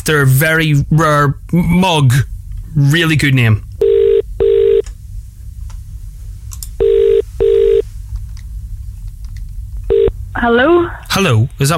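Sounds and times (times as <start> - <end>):
speech: 0.0 - 3.7, 10.4 - 11.7
low rumble: 0.0 - 11.7
telephone ringback tones on a dialed call: 3.8 - 4.8, 6.8 - 7.8, 9.9 - 10.1.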